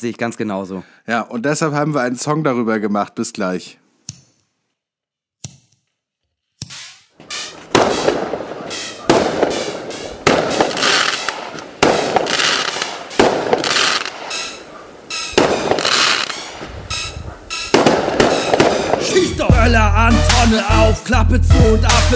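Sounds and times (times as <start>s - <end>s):
speech: 0.0s - 3.8s, 19.7s - 22.1s
firecrackers popping: 6.6s - 19.5s
rockets exploding: 6.7s - 19.5s.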